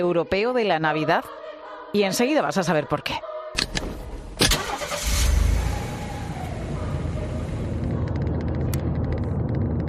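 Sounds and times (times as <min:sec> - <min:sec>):
speech: 0:00.0 - 0:03.9
car engine starting and idling: 0:04.4 - 0:09.3.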